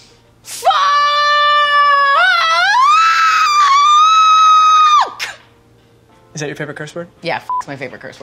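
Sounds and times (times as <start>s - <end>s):
person screaming: 0.6s - 5.4s
speech: 6.4s - 8.2s.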